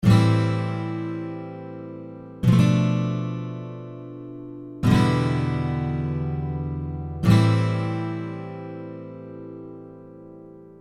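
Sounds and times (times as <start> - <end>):
guitar playing A B E A7 chords: 0.0 - 10.7.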